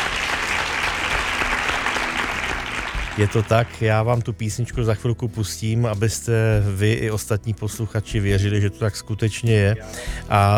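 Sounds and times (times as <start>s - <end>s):
sizable crowd applauding: 0.0s - 3.9s
speech: 3.2s - 10.5s.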